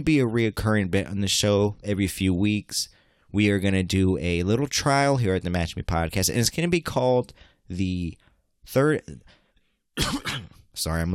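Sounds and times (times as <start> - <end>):
speech: 0.0 - 9.4, 10.0 - 11.1
person clearing phlegm from throat: 10.0 - 10.6.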